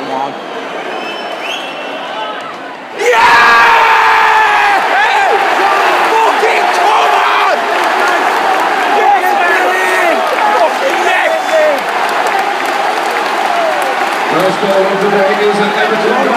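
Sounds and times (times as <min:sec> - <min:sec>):
whistles: 0:00.4 - 0:02.2
football crowd roaring at a stadium: 0:02.9 - 0:16.3
people shouting: 0:03.0 - 0:14.1
people clapping: 0:04.5 - 0:16.3.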